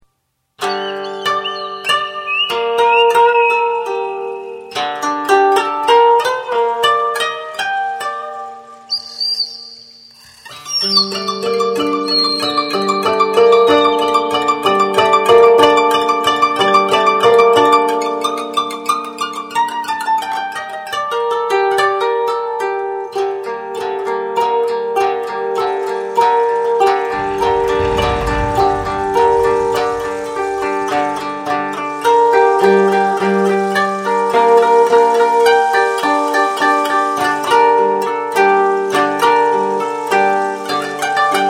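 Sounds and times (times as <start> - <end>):
koto: 0.6 - 41.4.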